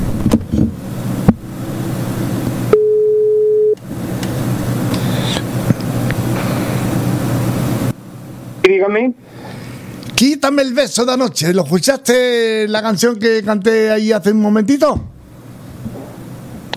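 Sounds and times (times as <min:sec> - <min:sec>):
low noise: 0:00.0 - 0:16.7
telephone line tone while placing a call: 0:02.7 - 0:03.8
speech: 0:08.8 - 0:09.2, 0:10.2 - 0:15.1.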